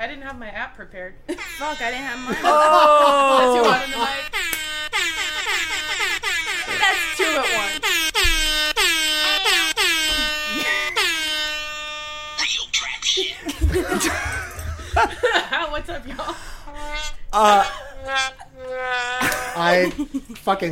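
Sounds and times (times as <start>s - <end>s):
speech: 0.0s - 4.3s, 15.0s - 16.5s, 17.3s - 20.6s
lively crowd laughing and cheering: 2.3s - 4.3s, 13.6s - 15.6s
air horn blasts from an audience: 3.6s - 12.4s.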